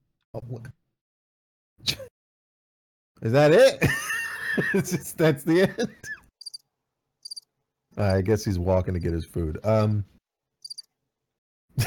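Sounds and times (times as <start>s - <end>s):
speech: 0.3s - 0.8s, 3.2s - 6.2s, 8.0s - 10.1s
laughter: 3.8s - 6.2s
cricket chirp: 6.4s - 6.6s, 7.2s - 7.4s, 10.6s - 10.9s.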